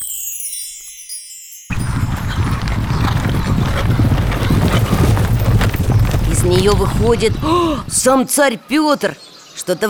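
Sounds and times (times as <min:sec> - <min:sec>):
carriage wheels and harness rattling: 0:01.7 - 0:07.4
horse hooves clip-clopping pulling a carriage: 0:01.7 - 0:08.2
speech: 0:06.5 - 0:09.8.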